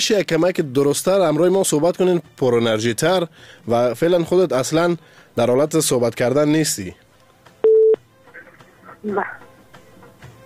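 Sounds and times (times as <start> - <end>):
speech: 0.0 - 7.0, 9.0 - 9.4
loud steady telephone line tone: 7.6 - 8.0
brief burst of voice: 8.3 - 9.4.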